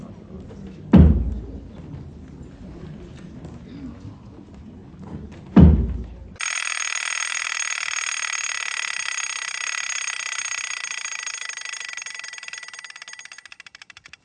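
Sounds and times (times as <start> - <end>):
low thump: 0.9 - 1.6, 5.6 - 6.3
alarm clock bell ringing: 6.4 - 14.2.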